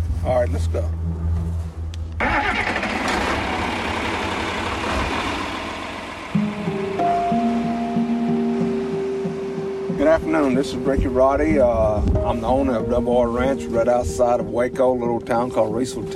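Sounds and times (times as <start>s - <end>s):
speech: 0.2s - 1.4s, 10.0s - 16.1s
heavy tractor engine starting and idling: 2.0s - 11.3s.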